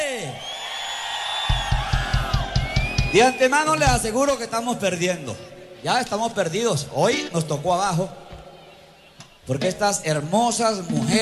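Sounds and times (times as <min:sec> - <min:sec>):
men in an audience roaring and whooping: 0:00.0 - 0:03.8
speech: 0:03.1 - 0:08.3, 0:09.5 - 0:11.2.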